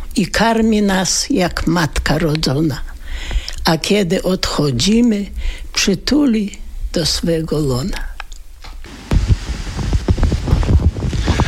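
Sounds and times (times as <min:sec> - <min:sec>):
speech: 0:00.2 - 0:08.1
light wind gusts buffeting the microphone on a dam along the San river: 0:08.9 - 0:11.4.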